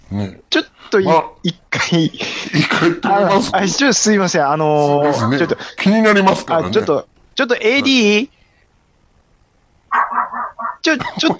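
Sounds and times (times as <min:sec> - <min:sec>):
speech: 0:00.1 - 0:08.4, 0:10.8 - 0:11.3
dog barking live in a studio: 0:09.9 - 0:10.8.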